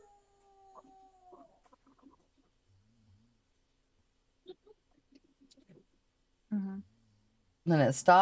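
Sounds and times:
dog howling faintly on camera footage: 0.0s - 1.6s
speech: 7.7s - 8.2s.

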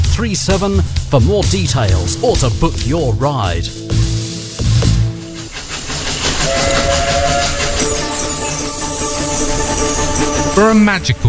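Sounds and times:
speech: 0.2s - 4.0s, 10.6s - 11.2s
steam train chuffing on rails: 0.3s - 11.0s
steam train wheels clattering on rails: 4.8s - 10.6s
hissing steam: 5.3s - 10.5s
steam train whistle-like burst: 6.4s - 10.6s.

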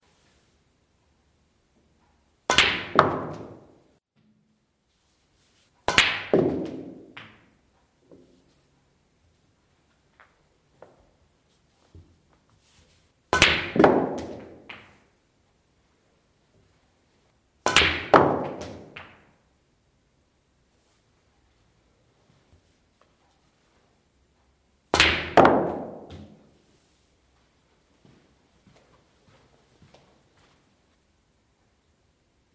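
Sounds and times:
snooker practice: 1.6s - 19.5s, 20.9s - 30.4s.

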